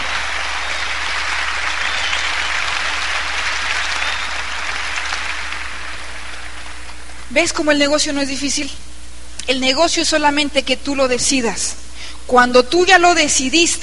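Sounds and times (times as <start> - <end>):
audience applause: 0.0 - 7.3
speech: 7.4 - 8.9, 9.5 - 13.8.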